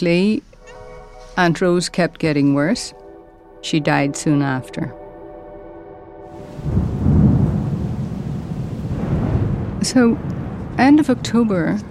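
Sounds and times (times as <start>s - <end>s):
speech: 0.0s - 0.5s, 1.4s - 3.0s, 3.6s - 5.0s, 6.6s - 6.9s, 9.8s - 11.9s
rolling thunder: 6.3s - 11.9s
thunderstorm noise: 6.3s - 11.9s.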